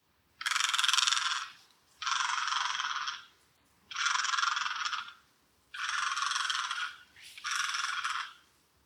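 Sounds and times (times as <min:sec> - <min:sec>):
great egret rasping croaks: 0:00.4 - 0:03.3, 0:03.9 - 0:05.2, 0:05.8 - 0:08.4.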